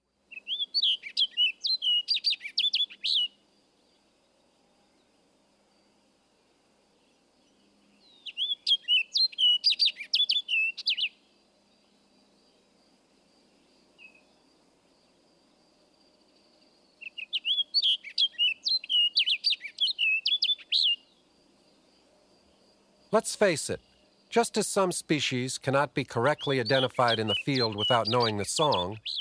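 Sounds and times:
orchard oriole singing: 0:00.3 - 0:05.2, 0:07.0 - 0:12.8, 0:13.4 - 0:15.2, 0:16.2 - 0:29.1
speech: 0:23.1 - 0:29.1.

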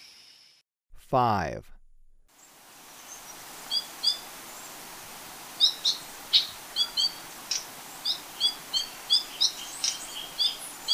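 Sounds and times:
speech: 0:01.1 - 0:01.8
faint background hiss: 0:02.4 - 0:10.9
yellow-collared chlorophonia calls in Ecuador: 0:03.0 - 0:04.8, 0:05.6 - 0:10.9.

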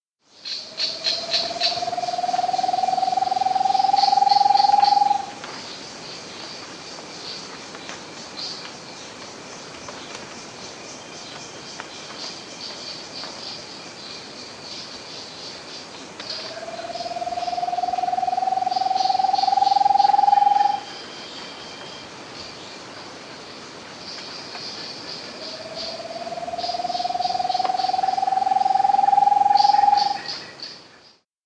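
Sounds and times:
Great Antpitta calling in South America: 0:00.5 - 0:05.5, 0:16.2 - 0:22.1, 0:25.2 - 0:30.6.

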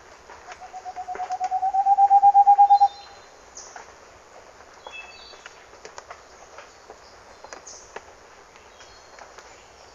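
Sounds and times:
Moustached Antpitta fast run of hollow whistled notes in Ecuador: 0:00.5 - 0:03.0
faint high chirps from other birds: 0:00.5 - 0:03.2.

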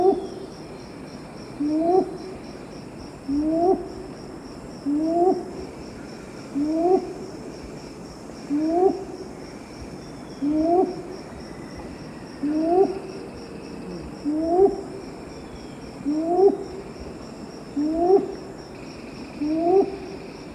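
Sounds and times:
high-pitched insects in the eastern lowlands of South America: 0:00.0 - 0:20.5
red-billed ground-cuckoo giving low upslurred hoots: 0:01.6 - 0:02.3, 0:03.3 - 0:03.9, 0:04.8 - 0:05.6, 0:06.5 - 0:07.2, 0:08.5 - 0:09.1, 0:10.4 - 0:11.1, 0:12.4 - 0:13.1, 0:13.7 - 0:15.0, 0:16.0 - 0:16.7, 0:17.8 - 0:18.4, 0:19.4 - 0:20.1.

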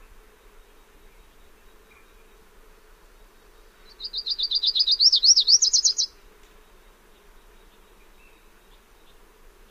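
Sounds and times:
Lucy's warbler song: 0:03.9 - 0:06.1.

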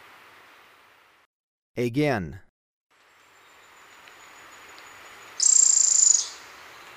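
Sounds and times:
speech: 0:01.8 - 0:02.5
bronze-olive pygmy-tyrant high buzzy trill in Ecuador: 0:03.1 - 0:06.8.

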